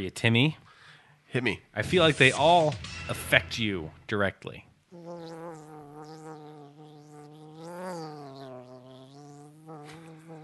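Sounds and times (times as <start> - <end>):
speech: 0.0 - 0.6, 1.3 - 5.4
loud bee-like buzz: 4.9 - 10.4.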